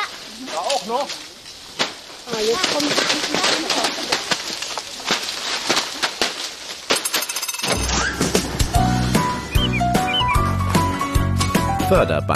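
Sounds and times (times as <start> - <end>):
apples pattering down from a shaken tree: 0.0 - 11.7
speech: 0.6 - 1.3, 2.3 - 4.3, 11.9 - 12.3
bright melodic music bed: 8.5 - 12.3.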